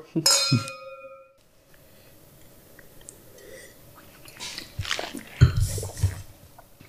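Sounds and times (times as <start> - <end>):
glasses of 2022 Grüner Veltliner wine clinking in a toast: 0.3 - 1.4
quiet sipping: 1.6 - 6.7
soft mouth sounds: 2.4 - 6.7.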